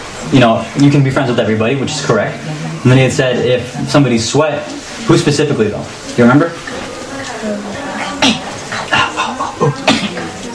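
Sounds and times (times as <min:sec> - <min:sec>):
speech: 0:00.3 - 0:06.7
voiced murmuring: 0:01.4 - 0:10.5
person coughing: 0:09.0 - 0:10.3.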